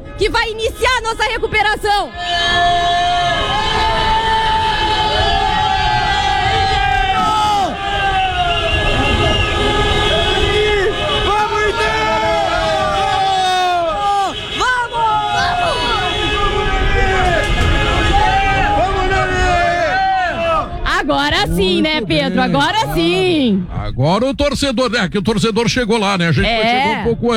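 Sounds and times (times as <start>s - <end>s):
indistinct voices: 0.0s - 24.6s
crowd noise: 0.0s - 27.3s
speech: 0.2s - 3.6s, 21.6s - 27.3s
many car horns honking in celebration: 2.2s - 20.8s.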